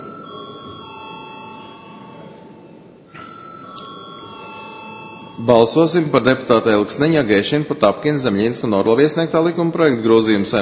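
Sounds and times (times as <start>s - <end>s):
electric bell ringing in a parliament chamber to call members to a vote: 0.0s - 6.5s
speech: 5.4s - 10.5s.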